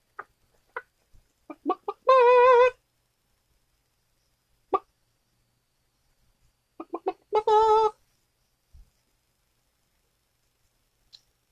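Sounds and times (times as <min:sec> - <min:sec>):
little pet rooster clucking and squawking: 0:01.5 - 0:02.8, 0:04.7 - 0:04.9, 0:06.8 - 0:08.0.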